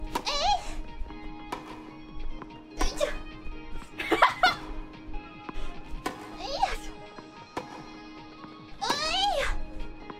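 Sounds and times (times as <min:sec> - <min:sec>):
tennis noises: 0:00.0 - 0:10.1
laughter: 0:03.9 - 0:04.8.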